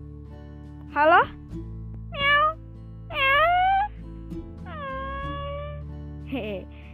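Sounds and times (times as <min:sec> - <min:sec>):
speech: 0:01.0 - 0:01.7
cat meowing: 0:02.2 - 0:03.9, 0:04.7 - 0:05.8.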